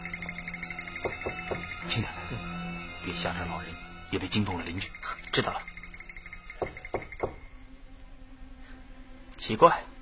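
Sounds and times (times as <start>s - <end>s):
knocking on a wooden door: 1.0s - 1.8s, 6.6s - 7.5s
speech: 1.0s - 5.7s, 9.5s - 9.9s.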